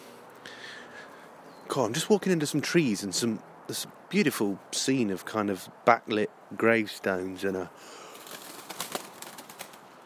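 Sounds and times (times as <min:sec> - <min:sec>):
soft hiss: 0:00.0 - 0:10.0
speech: 0:01.8 - 0:08.0
startled birds flapping wings among trees and gravestones: 0:07.8 - 0:10.0.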